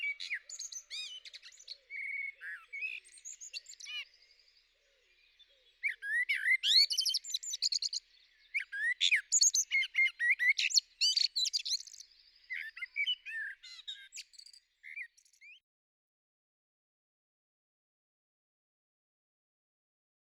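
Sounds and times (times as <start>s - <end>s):
common blackbird singing warbled notes and high twitters: 0.0s - 15.6s.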